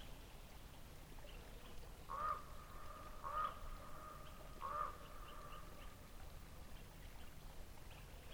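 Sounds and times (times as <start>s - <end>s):
quiet background noise: 0.0s - 8.3s
raven croaking in flight: 2.1s - 5.7s.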